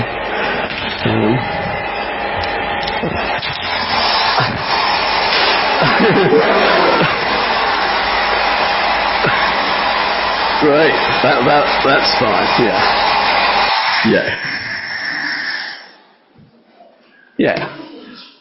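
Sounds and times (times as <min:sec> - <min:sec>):
hairdryer blowing: 0:00.0 - 0:16.0
people chattering and laughing: 0:05.7 - 0:07.7
speech: 0:06.1 - 0:06.8, 0:10.6 - 0:13.2, 0:14.0 - 0:14.6, 0:17.4 - 0:17.8.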